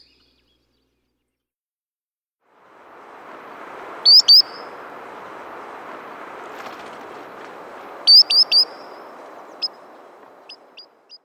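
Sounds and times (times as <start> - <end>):
Solitary Sandpiper calling: 2.6 - 11.2.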